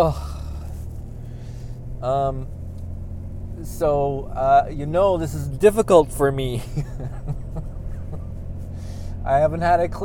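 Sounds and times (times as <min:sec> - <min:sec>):
speech: 0:00.0 - 0:00.3, 0:02.0 - 0:02.6, 0:03.6 - 0:07.4, 0:09.2 - 0:10.0
person exclaiming: 0:00.0 - 0:00.6
truck driving on rough highway road heard from inside the cab: 0:00.0 - 0:10.0
laughter: 0:06.6 - 0:08.4.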